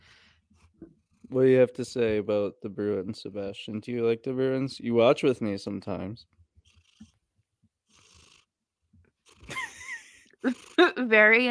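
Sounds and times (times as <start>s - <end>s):
cat purring in breathy rumbling bursts: 0.6s - 2.4s, 6.4s - 11.0s
speech: 1.3s - 6.4s, 10.4s - 11.4s.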